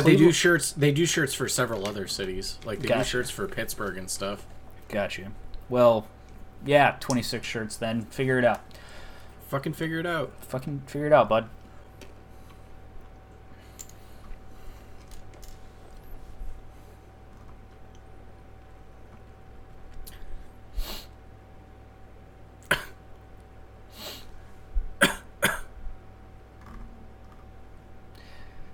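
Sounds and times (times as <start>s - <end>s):
speech: 0.0s - 8.8s, 9.5s - 11.6s
low steady hum: 0.0s - 28.7s
short breathy sniffs: 20.8s - 21.1s, 23.9s - 24.4s.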